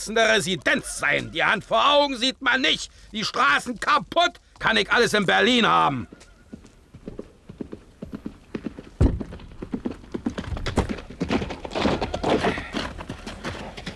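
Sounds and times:
speech: 0.0s - 6.3s
horse hooves clip-clopping near city gates at night: 0.0s - 13.9s
heavy thump: 9.0s - 9.5s.

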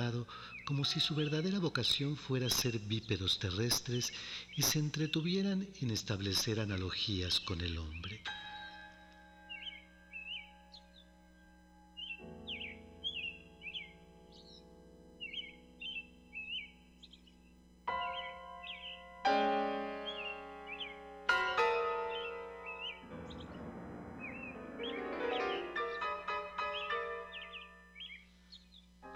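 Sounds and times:
speech: 0.0s - 8.5s
piano notes and chords: 8.2s - 28.3s, 29.0s - 29.1s
blackbird whistling song: 9.5s - 11.0s, 12.0s - 14.6s, 15.2s - 19.1s, 20.0s - 21.0s, 22.1s - 23.6s, 24.2s - 28.9s.

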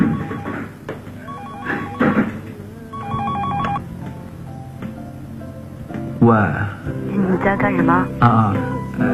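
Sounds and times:
telephone ringing with electronic ringing tones: 0.0s - 3.8s
speech: 6.3s - 9.1s.

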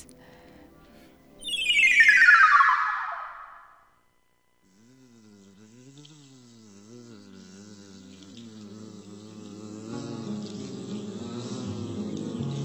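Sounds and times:
high whine sweeping downward: 1.4s - 3.8s.

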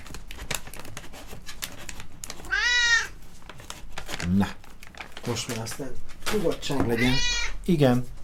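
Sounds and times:
cat meowing: 2.5s - 3.2s, 6.8s - 7.6s
speech: 4.3s - 4.6s, 5.2s - 8.2s.

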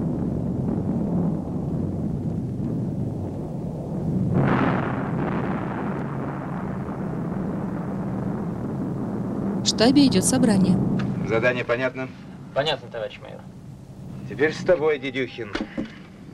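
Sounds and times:
battlefield explosions: 0.0s - 12.5s
speech: 9.8s - 13.6s, 14.3s - 16.0s.

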